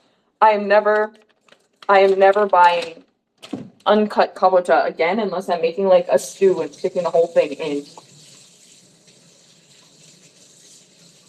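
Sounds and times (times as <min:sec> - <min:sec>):
speech: 0:00.4 - 0:01.2, 0:01.9 - 0:03.0, 0:03.9 - 0:08.0
tap water running while rinsing a cutting board: 0:05.9 - 0:11.2.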